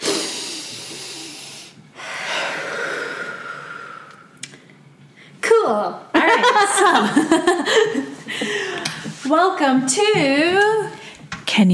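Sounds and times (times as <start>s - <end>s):
deep breath in: 0.0s - 4.4s, 8.3s - 9.1s
speech: 5.7s - 8.6s, 9.3s - 10.9s, 11.6s - 11.7s
laughter: 6.2s - 9.0s.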